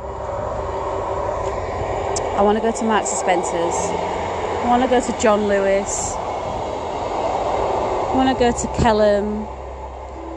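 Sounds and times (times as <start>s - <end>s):
train passing: 0.0s - 10.3s
speech: 2.4s - 6.2s, 8.2s - 9.6s.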